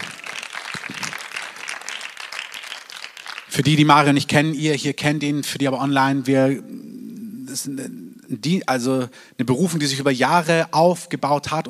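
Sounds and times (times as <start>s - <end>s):
crowd applauding: 0.0s - 3.8s
speech: 3.6s - 6.8s, 7.5s - 11.6s.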